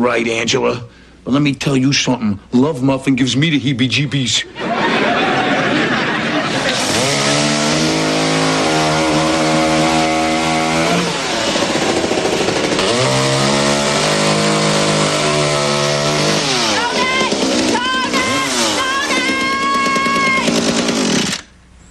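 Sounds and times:
speech: 0.0 - 4.7
laughter: 4.4 - 7.8
chainsaw cutting tree branches: 6.0 - 21.6.

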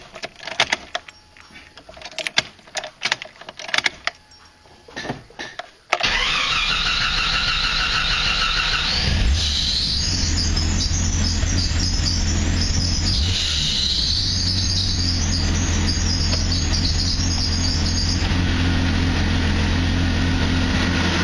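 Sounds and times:
irregular clicks: 0.0 - 6.3
car engine running out of gas being restarted: 0.0 - 21.2.

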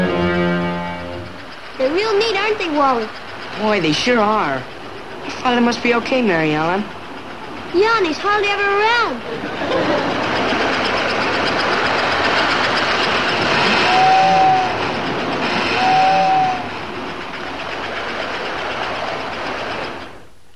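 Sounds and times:
toy electric train whistle toots: 0.0 - 2.0, 13.4 - 16.7
toy electric train running on tracks with whirring rattle: 1.2 - 20.2
speech: 1.8 - 4.8, 5.4 - 7.0, 7.7 - 11.0
laughter: 9.2 - 10.8.

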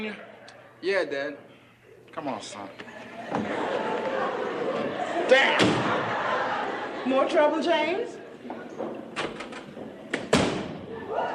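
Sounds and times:
speech: 0.0 - 1.5, 2.1 - 4.5, 5.3 - 6.0, 7.0 - 9.0
laughter: 2.8 - 8.8
doors slamming shut: 4.7 - 6.3, 8.5 - 11.1.

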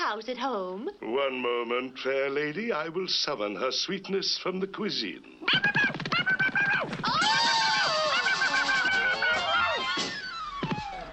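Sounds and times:
speech: 0.1 - 5.9
laughter: 5.5 - 6.9, 7.5 - 10.1
woman screaming: 6.6 - 8.4, 9.0 - 11.1.

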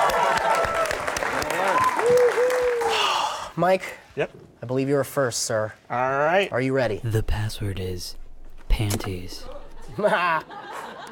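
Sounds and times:
faint whistles and cheers from studio audience: 0.0 - 3.0
studio audience applause for game show contestants: 0.0 - 3.4
speech: 3.6 - 10.8
laughter: 9.7 - 11.1.

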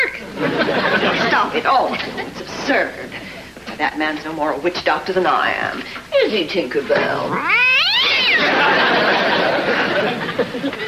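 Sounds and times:
laughter: 0.2 - 2.5, 8.2 - 10.8
speech: 1.6 - 3.2, 3.8 - 7.8
cat yowling: 7.3 - 8.6.

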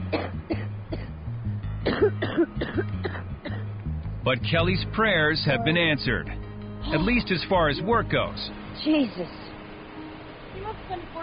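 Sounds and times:
speech: 0.1 - 0.6, 1.8 - 3.2, 4.2 - 9.5
harsh coughing from a lung infection: 0.1 - 1.1, 1.8 - 3.7.

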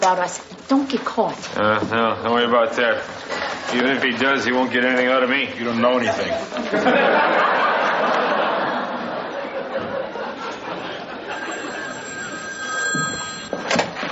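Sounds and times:
speech: 0.0 - 8.2
people chuckling: 6.0 - 11.9
telephone bell ringing: 11.3 - 14.0.

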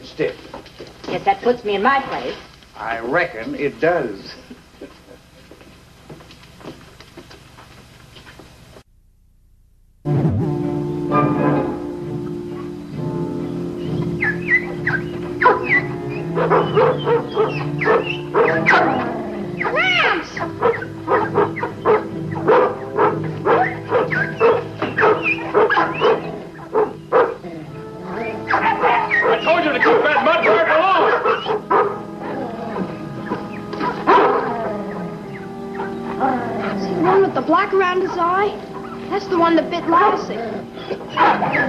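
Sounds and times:
speech: 0.2 - 0.5, 1.1 - 4.5
steady tonal hum: 8.5 - 41.6
dog barking and yipping: 14.2 - 27.4, 28.1 - 36.2, 38.1 - 39.1, 39.9 - 41.6.

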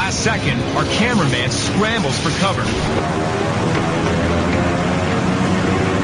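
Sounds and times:
heavy propeller water bomber plane engines throttling up: 0.0 - 6.0
speech: 0.2 - 4.1.

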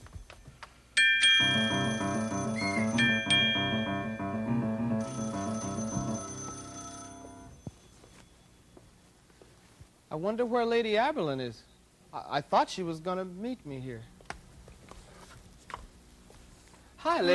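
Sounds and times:
telephone ringing with an electronic chiming melody: 1.0 - 8.3
speech: 10.2 - 14.1, 17.0 - 17.3.

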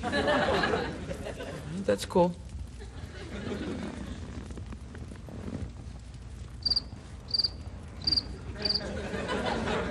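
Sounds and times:
speech: 0.0 - 1.0, 1.8 - 2.4
laughter: 0.0 - 1.8, 2.8 - 4.4, 8.4 - 9.8
soft steady outdoor hiss: 0.0 - 9.8
crickets chirping at night: 6.6 - 8.9.

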